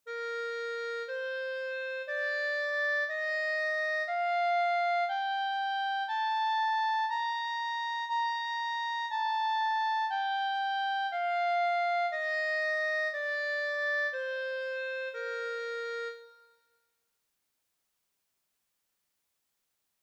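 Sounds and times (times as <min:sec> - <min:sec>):
B-flat clarinet playing: 0:00.1 - 0:16.6.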